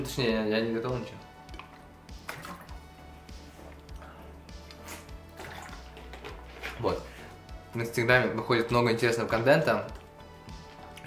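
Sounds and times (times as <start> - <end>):
speech: 0.0 - 1.3, 6.8 - 7.1, 7.7 - 10.0
person drinking water: 1.4 - 7.4.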